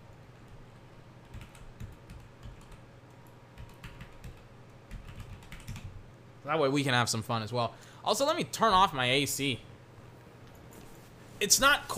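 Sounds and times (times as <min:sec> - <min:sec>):
fingers typing on a computer keyboard: 0:01.2 - 0:06.0
speech: 0:06.5 - 0:09.7, 0:11.4 - 0:11.9.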